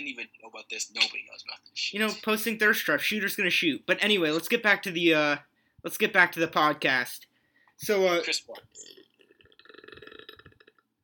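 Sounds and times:
speech: 0:00.0 - 0:09.0
long throaty burp: 0:08.8 - 0:10.9.

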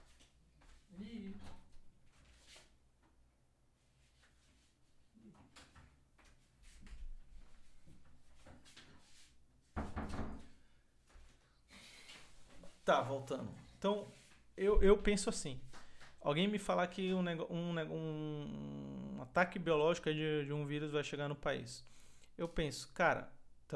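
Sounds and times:
door thud as it swings shut: 0:09.8 - 0:10.4
knocks and bumps of a door being handled: 0:09.8 - 0:10.5
speech: 0:12.9 - 0:23.7.

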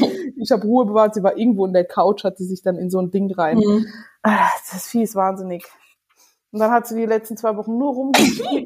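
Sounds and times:
person sneezing: 0:00.0 - 0:00.3, 0:08.2 - 0:08.6
speech: 0:00.4 - 0:05.8, 0:06.5 - 0:08.6.

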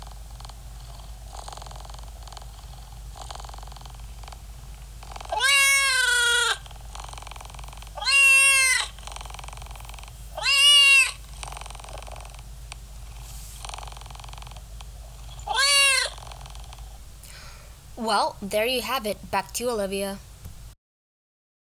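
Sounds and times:
cat purring: 0:00.0 - 0:19.8
cat meowing: 0:05.3 - 0:06.6, 0:08.0 - 0:09.0, 0:10.4 - 0:11.2, 0:15.4 - 0:16.2
speech: 0:18.1 - 0:20.3.

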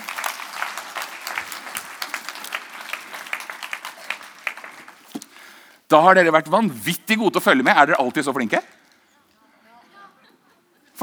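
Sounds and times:
audience applauding: 0:00.0 - 0:05.8
speech: 0:05.9 - 0:08.8.

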